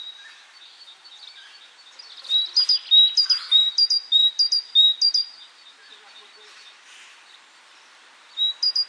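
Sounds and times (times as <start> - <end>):
great tit: 2.0 - 5.2.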